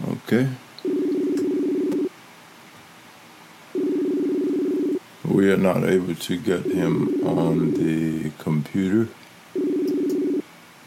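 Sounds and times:
quiet hiss: 0.0 - 10.8
speech: 0.3 - 0.6, 5.3 - 9.2
steady electronic cell phone tone: 0.8 - 2.1, 3.8 - 5.0, 6.6 - 7.8, 9.6 - 10.4
faint cell phone keypad clicks: 9.8 - 10.2.

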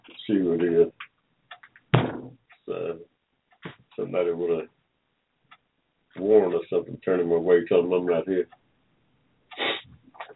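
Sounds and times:
speech: 0.3 - 1.0, 4.0 - 4.8, 6.2 - 8.6
knocking on a door: 1.9 - 2.4.

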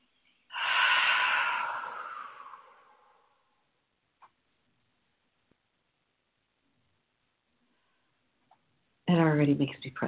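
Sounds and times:
deep breath drawn in through the nose: 0.5 - 3.6
speech: 9.1 - 10.0.

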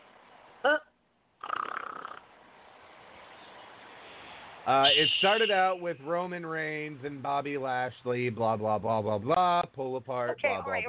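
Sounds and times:
voice imitating snoring with snort and raspy snore: 1.4 - 2.2
speech: 4.7 - 10.8.

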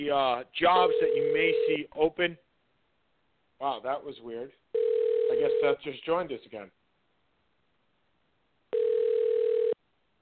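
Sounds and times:
speech: 0.0 - 2.5, 3.6 - 6.8
electronic telephone call tone on the line: 0.8 - 1.8, 4.8 - 5.7, 8.7 - 9.8.

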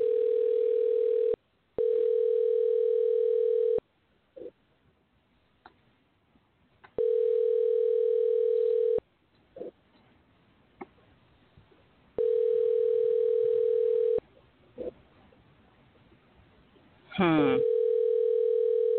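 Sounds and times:
telephone ringback tone of an unanswered call: 0.0 - 3.8, 7.0 - 9.0, 12.2 - 14.2, 17.6 - 18.9.

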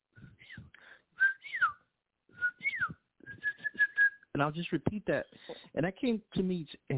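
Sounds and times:
person whistling a bird-like call: 0.4 - 1.8, 2.4 - 4.2
speech: 4.4 - 6.9.

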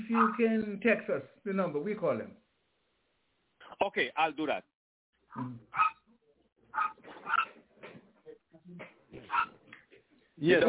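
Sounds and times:
dog barking: 0.0 - 0.4, 5.7 - 6.1, 6.7 - 7.6, 9.3 - 9.6
speech: 0.1 - 2.4, 3.8 - 4.7, 5.3 - 5.9, 8.7 - 9.6, 10.4 - 10.6.

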